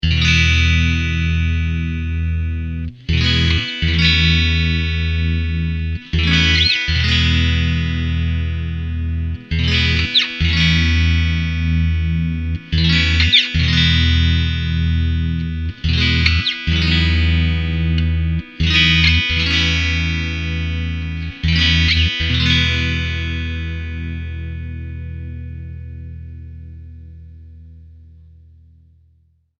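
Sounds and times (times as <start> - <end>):
pig iron clean bridge tone: 0.1 - 28.7.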